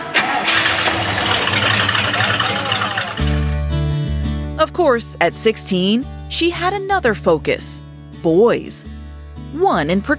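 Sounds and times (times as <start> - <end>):
Chevelle car engine cranking and starting, settling into a low idle: 0.0 - 4.2
speech: 4.7 - 10.1.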